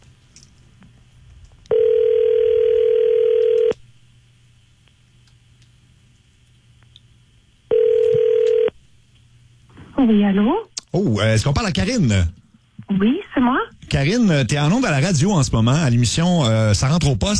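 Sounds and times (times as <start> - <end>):
telephone line tones for an outgoing call: 1.7 - 3.8, 7.7 - 8.7
speech: 10.1 - 17.3.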